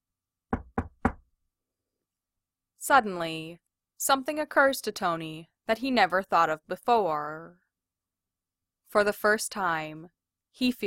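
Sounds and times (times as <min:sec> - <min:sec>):
sharp knocks: 0:00.5 - 0:01.2
speech: 0:02.9 - 0:07.6, 0:08.9 - 0:10.8.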